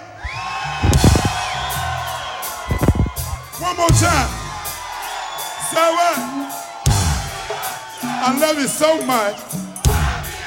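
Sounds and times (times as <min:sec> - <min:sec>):
shrill whistles: 0:00.0 - 0:09.9
crowd cheering loudly with whoops: 0:00.0 - 0:10.4
shouts: 0:00.0 - 0:10.4
bursts of clapping: 0:00.9 - 0:03.5
speech: 0:03.7 - 0:04.4, 0:05.7 - 0:06.6, 0:08.2 - 0:09.6.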